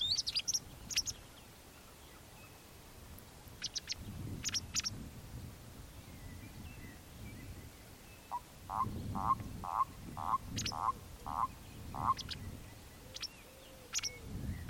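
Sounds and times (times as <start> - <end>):
white wagtail calls: 0.0 - 1.9, 3.6 - 4.9, 8.3 - 14.6.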